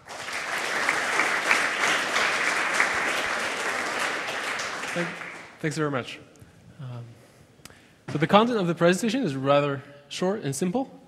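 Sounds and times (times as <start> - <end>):
audience applause: 0.0 - 5.6
speech: 5.0 - 7.2, 8.1 - 11.0.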